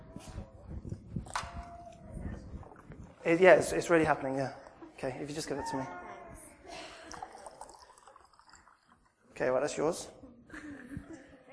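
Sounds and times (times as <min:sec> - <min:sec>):
speech: 0:03.2 - 0:06.0, 0:09.4 - 0:10.2
bright drips of a drink: 0:07.0 - 0:09.1
drink pouring into a cup: 0:07.0 - 0:09.2.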